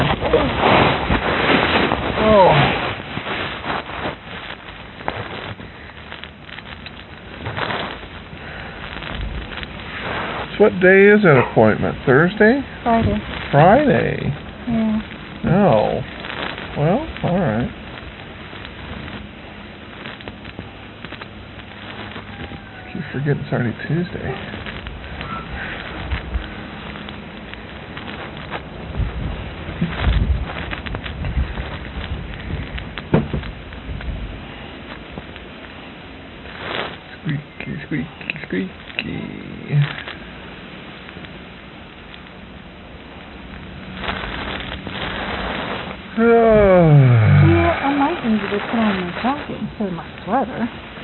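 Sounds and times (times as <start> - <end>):
wind blowing outdoors in gusts: 0.0 - 51.0
speech: 10.6 - 14.8, 15.6 - 16.1, 16.8 - 17.8, 23.2 - 24.7
rising tonal voice-like sound: 46.2 - 48.3.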